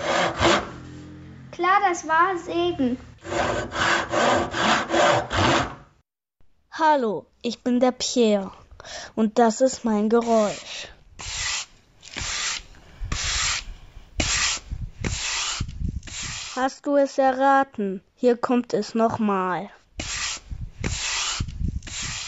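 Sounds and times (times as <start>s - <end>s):
child speaking: 1.5s - 3.1s, 6.7s - 8.6s, 9.2s - 10.9s, 16.6s - 19.8s
speech: 1.6s - 5.6s, 6.8s - 11.4s, 16.6s - 19.8s
broom sweeping a yard: 10.2s - 16.6s, 20.0s - 22.2s.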